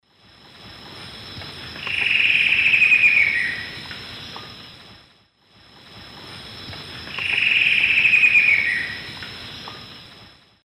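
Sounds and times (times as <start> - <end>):
Dendrocincla fuliginosa song in South American Eastern Lowlands: 0.9 - 4.8, 6.4 - 10.2.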